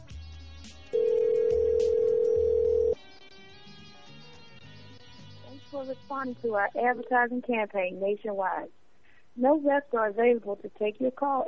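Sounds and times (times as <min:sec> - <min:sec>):
telephone line tone as a call goes through to an advertising line: 0:01.0 - 0:03.0
speech: 0:05.8 - 0:08.8, 0:09.4 - 0:11.4.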